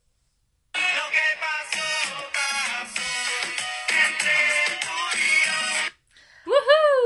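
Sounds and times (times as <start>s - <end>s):
upbeat reggaeton music section jingle: 0.8s - 6.0s.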